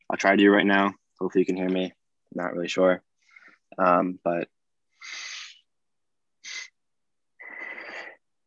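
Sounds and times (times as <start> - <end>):
speech: 0.1 - 3.1, 3.7 - 5.2
person breathing in and out in a calming breathing exercise: 4.9 - 5.7, 6.4 - 6.8, 7.4 - 8.3.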